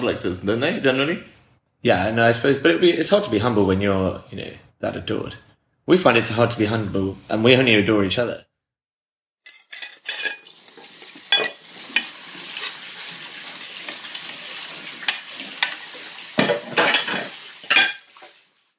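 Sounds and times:
speech: 0:00.0 - 0:08.5
cutlery and pans clinking while washing dishes: 0:09.4 - 0:10.7, 0:11.3 - 0:12.2, 0:15.0 - 0:15.8, 0:16.4 - 0:18.3.

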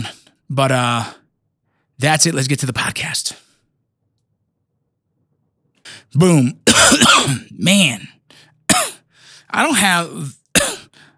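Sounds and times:
speech: 0:00.0 - 0:01.2, 0:02.0 - 0:03.4, 0:05.9 - 0:08.2, 0:09.5 - 0:10.4
person coughing: 0:06.7 - 0:07.6, 0:08.7 - 0:09.0, 0:10.5 - 0:10.9.

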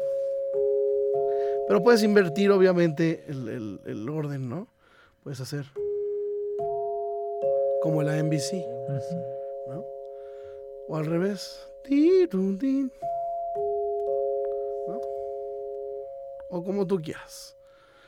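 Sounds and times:
dinner chimes struck in a melody: 0:00.0 - 0:04.3, 0:05.8 - 0:18.0
speech: 0:01.7 - 0:05.8, 0:07.8 - 0:09.9, 0:10.9 - 0:13.1, 0:14.9 - 0:15.1, 0:16.5 - 0:17.6.

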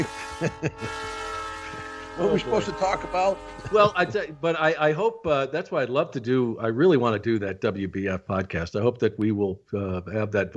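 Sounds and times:
laughter: 0:00.0 - 0:00.9, 0:02.2 - 0:10.5
speech: 0:00.0 - 0:01.2, 0:02.2 - 0:10.5
train whistle: 0:00.0 - 0:04.4.

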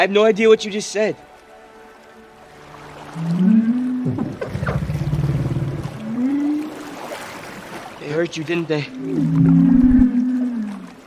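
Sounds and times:
speech: 0:00.0 - 0:01.3, 0:03.2 - 0:04.2, 0:08.1 - 0:09.9
whale-like sea creature long low moaning call in a film: 0:03.2 - 0:07.0, 0:08.9 - 0:11.0.

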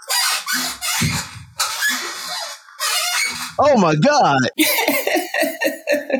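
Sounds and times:
old rocking chair creaking: 0:00.0 - 0:03.8
speech: 0:03.6 - 0:04.8
laughter: 0:04.6 - 0:06.1.

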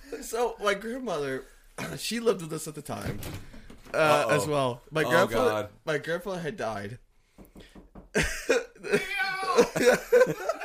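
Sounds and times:
speech: 0:00.3 - 0:07.0, 0:07.6 - 0:10.6
laughter: 0:08.2 - 0:10.6
person imitating a cat meow: 0:08.9 - 0:09.7.

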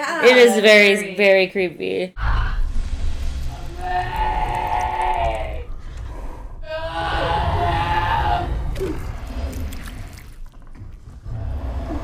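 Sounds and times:
speech: 0:00.2 - 0:02.2
low rumbling background: 0:02.2 - 0:12.0
mutated bear creature's eerie scream: 0:03.5 - 0:10.1.

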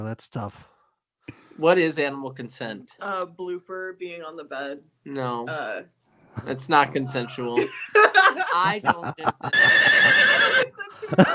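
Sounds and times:
speech: 0:00.0 - 0:00.7, 0:01.3 - 0:11.3
laughter: 0:06.4 - 0:11.3
horse neighing sound effect: 0:09.5 - 0:10.7.

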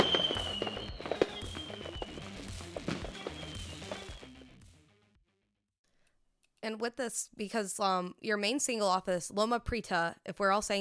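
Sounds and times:
thin whistling tone of fireworks: 0:00.0 - 0:02.3, 0:03.2 - 0:04.4
fireworks crackling and popping: 0:00.0 - 0:04.4
speech: 0:06.6 - 0:10.7.

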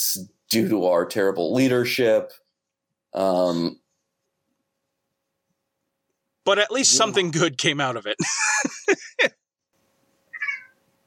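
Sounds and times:
speech: 0:00.0 - 0:02.4, 0:03.1 - 0:03.8, 0:06.4 - 0:09.4
laughter: 0:08.2 - 0:09.3
cat meowing: 0:10.3 - 0:10.8.

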